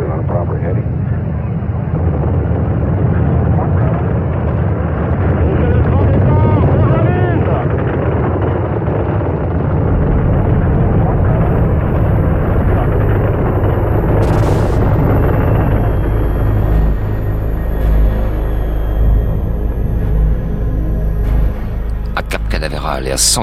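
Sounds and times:
rocket first-stage engines roaring at launch: 0.2s - 23.4s
person talking: 22.1s - 23.4s.

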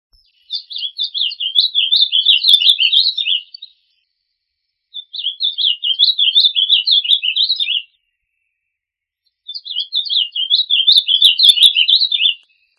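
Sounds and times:
bird giving a fast warbling high trill: 0.6s - 3.6s, 5.0s - 7.9s, 9.5s - 12.4s.

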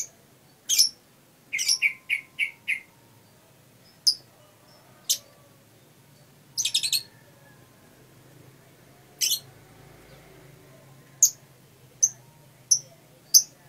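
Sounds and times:
caged lovebird calls: 0.0s - 2.9s, 6.5s - 7.2s, 9.2s - 9.5s, 12.0s - 13.6s
faint low hum: 0.0s - 13.6s.

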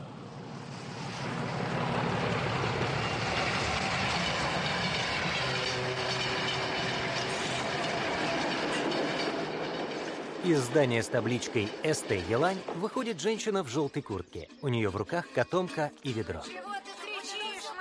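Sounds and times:
shunting diesel locomotive pulling black tank cars at a rural railway halt: 0.0s - 13.8s
speech: 10.5s - 16.7s.

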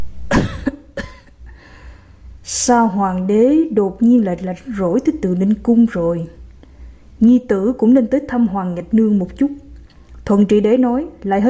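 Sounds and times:
quiet hiss: 0.0s - 11.4s
elderly woman coughing lightly, dry and throaty: 0.3s - 1.4s
speech: 2.6s - 6.4s, 7.2s - 9.6s, 10.3s - 11.4s.

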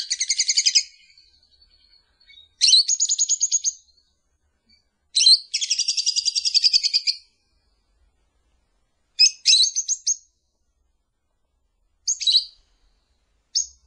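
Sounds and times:
lovebird lure call chirping and trilling: 0.0s - 4.1s, 5.2s - 7.3s, 9.2s - 10.3s, 12.1s - 12.7s, 13.5s - 13.8s.

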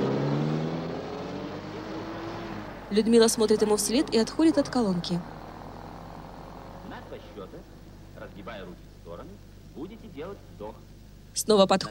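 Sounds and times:
bus engine driving away: 0.0s - 8.8s
speech: 2.9s - 5.4s, 7.3s - 11.8s.

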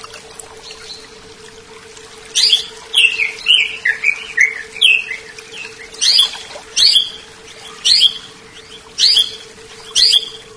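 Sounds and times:
steady background hum: 0.0s - 10.5s
small-leaf type leafbird giving bright whistled and chirping notes: 2.3s - 10.5s.

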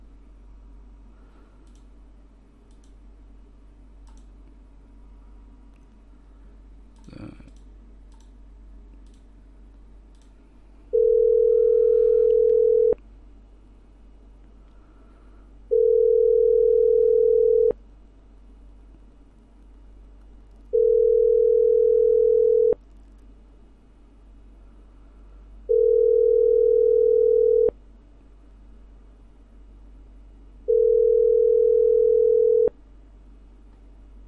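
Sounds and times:
faint clicks: 1.6s - 1.9s, 2.6s - 3.0s, 4.0s - 4.6s, 6.9s - 10.4s
telephone ringing tones while placing a call: 10.9s - 13.0s, 15.7s - 17.8s, 20.7s - 22.8s, 25.7s - 27.7s, 30.7s - 32.7s.

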